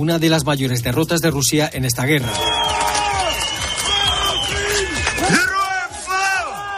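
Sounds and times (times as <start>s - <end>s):
speech: 0.0s - 2.8s
street crowd shouting and cheering celebratory chants outdoors: 2.1s - 6.7s
loud whoops: 2.2s - 6.7s.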